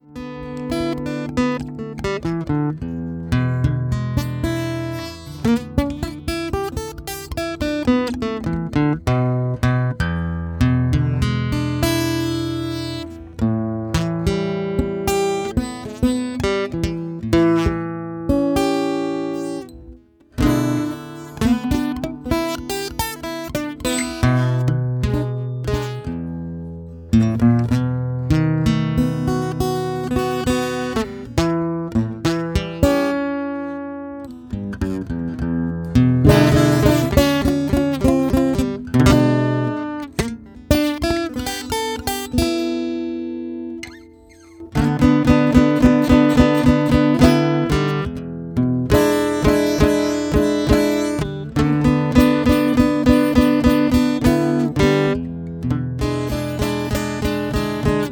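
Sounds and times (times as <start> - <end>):
blues guitar: 0.0 - 58.1.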